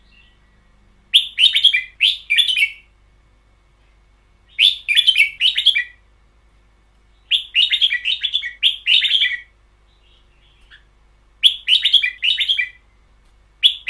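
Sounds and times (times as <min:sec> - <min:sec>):
caged red-whiskered bulbul warbling song: 0:00.0 - 0:02.9, 0:04.5 - 0:06.0, 0:07.2 - 0:12.8.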